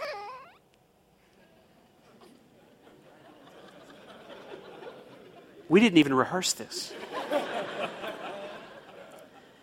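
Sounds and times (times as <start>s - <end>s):
baby crying: 0.0s - 0.6s
laughter: 2.6s - 5.7s, 6.8s - 9.6s
speech: 5.7s - 7.2s.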